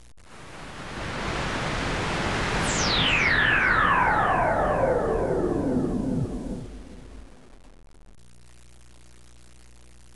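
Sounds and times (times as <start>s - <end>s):
powering down: 0.3s - 8.2s.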